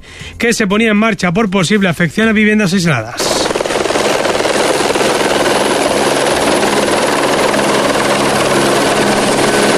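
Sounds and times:
speech: 0:00.4 - 0:03.4
firefighting helicopter flying overhead fighting a forest fire at Arroyo de San Serván: 0:03.2 - 0:09.7.

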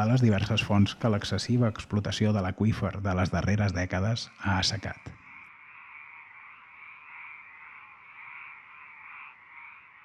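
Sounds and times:
speech: 0:00.0 - 0:05.2
dense chorus of frogs croaking: 0:00.0 - 0:10.0.

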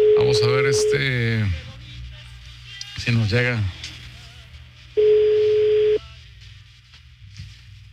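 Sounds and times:
telephone ringing tone on outgoing call: 0:00.0 - 0:01.1, 0:05.0 - 0:06.0
speech: 0:00.3 - 0:01.7, 0:03.0 - 0:03.8.

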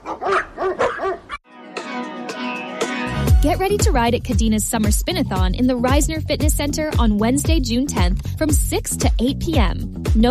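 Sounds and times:
dog barking: 0:00.0 - 0:01.4
speech: 0:03.4 - 0:10.2.

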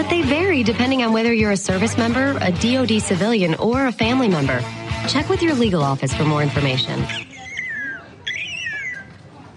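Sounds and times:
speech: 0:00.0 - 0:07.3
bird giving high whistled notes that bend in pitch: 0:07.1 - 0:09.1.

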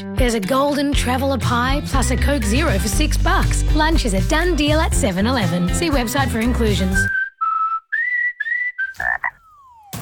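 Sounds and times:
speech: 0:00.0 - 0:07.2
thin whistle-like tones falling in pitch: 0:07.0 - 0:09.9
frog croaking: 0:08.5 - 0:09.7.

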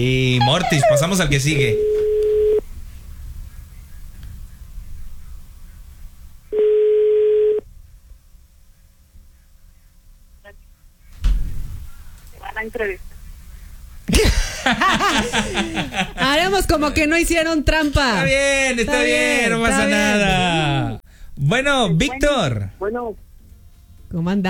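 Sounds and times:
speech: 0:00.0 - 0:01.9, 0:12.7 - 0:13.1, 0:16.6 - 0:23.2, 0:24.1 - 0:24.4
laughter: 0:00.4 - 0:01.3, 0:14.1 - 0:17.1
telephone ringback tone while a call is placed: 0:01.6 - 0:02.6, 0:06.6 - 0:07.6.

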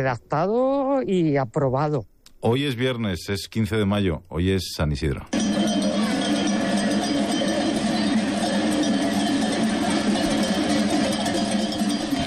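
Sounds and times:
speech: 0:00.0 - 0:05.7
bells of a large flock of sheep moving through streets of Huesca: 0:05.3 - 0:12.2.

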